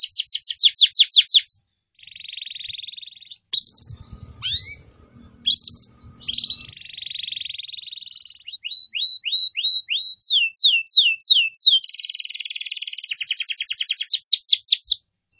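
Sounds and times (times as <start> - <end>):
canary song used as a lure for birds: 0.0 - 15.3
low rumbling noise: 3.6 - 6.8.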